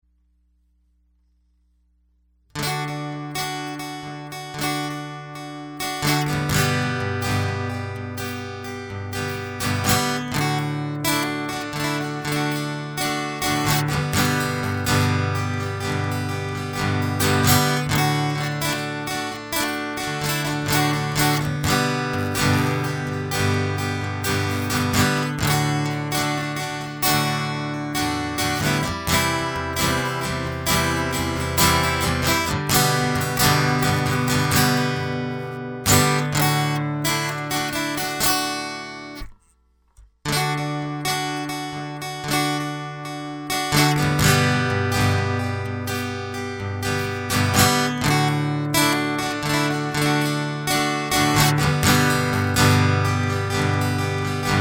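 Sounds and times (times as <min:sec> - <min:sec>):
country music guitar loop: 0:02.6 - 0:39.5, 0:40.2 - 0:54.6.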